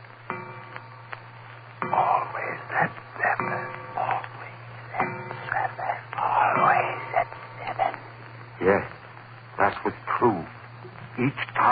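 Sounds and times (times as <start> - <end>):
steady low hum: 0.0 - 11.6
mantel clock striking the hour: 0.2 - 8.9.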